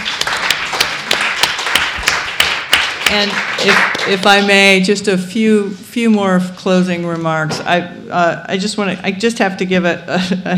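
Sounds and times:
small crowd applauding: 0.0s - 4.5s
speech: 3.1s - 10.5s.

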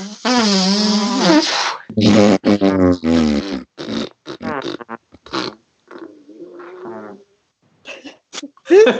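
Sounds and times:
short vocal bursts: 0.0s - 5.6s
loud buzzy fart noises possibly made by a voice: 0.0s - 7.3s.

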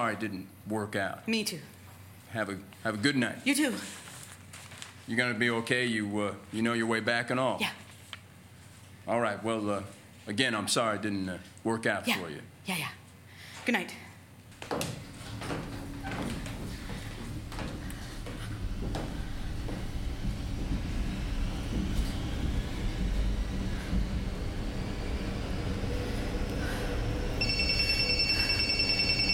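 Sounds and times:
speech: 0.0s - 4.0s, 5.1s - 7.8s, 9.1s - 13.0s, 13.6s - 14.0s
subway train in motion rumbling: 15.1s - 29.3s
thin high-pitched whine: 17.5s - 29.3s.

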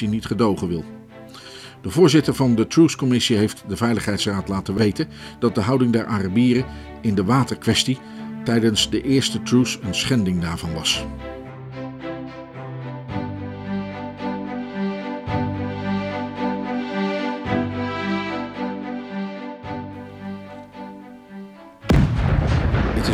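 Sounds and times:
speech: 0.0s - 11.4s
droning tonal music with a slow repeating pulse: 0.0s - 22.0s
loud explosion: 21.9s - 23.1s.

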